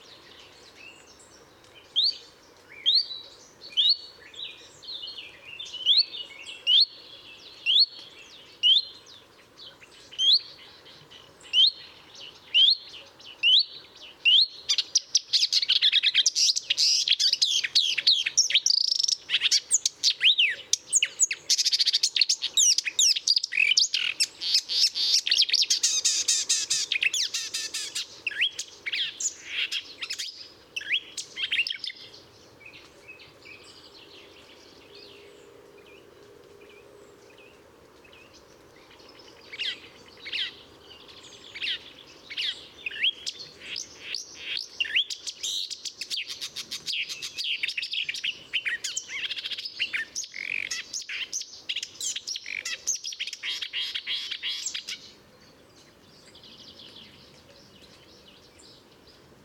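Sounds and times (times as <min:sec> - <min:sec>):
marsh warbler singing in Murnauer Moos: 0:00.0 - 0:59.4.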